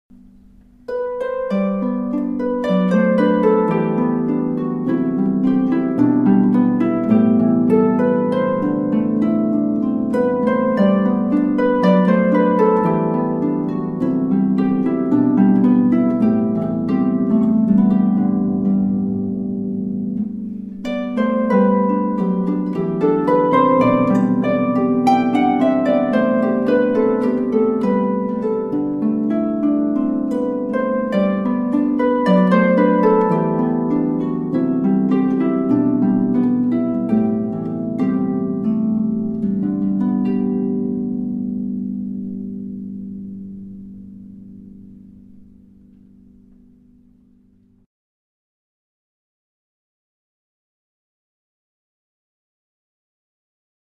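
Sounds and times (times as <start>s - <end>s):
harpist playing an Irish air: 0.1s - 47.6s.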